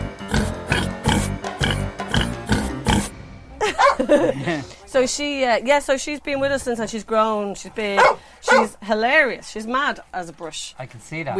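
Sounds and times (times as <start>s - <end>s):
pig grunting: 0.2s - 3.1s, 8.0s - 8.7s
laughter: 3.6s - 4.8s
speech: 4.1s - 11.3s.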